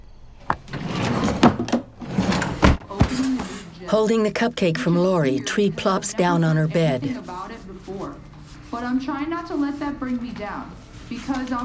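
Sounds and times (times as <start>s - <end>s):
wooden dresser drawer sliding open and shut: 0.5s - 3.6s
speech: 3.9s - 7.5s, 8.8s - 11.6s.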